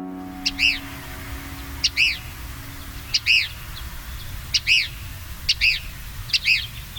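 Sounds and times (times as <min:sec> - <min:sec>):
Cassin's kingbird harsh arching calls: 0:00.2 - 0:06.9.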